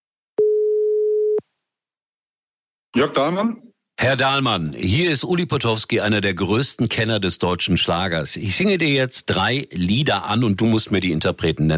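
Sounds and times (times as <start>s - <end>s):
telephone ringing tone calling a phone on Mallorca: 0.4s - 1.4s
speech: 3.0s - 11.7s.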